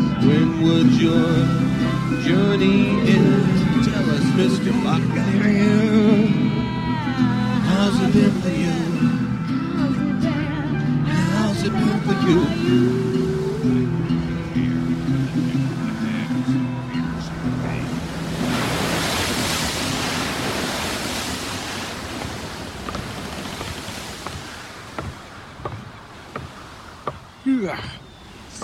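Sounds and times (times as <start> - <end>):
ocean waves lapping at sea: 0.0 - 28.6
speech: 0.2 - 6.4, 7.1 - 10.0, 11.6 - 14.0
sharp knocks and creaks: 22.2 - 27.4.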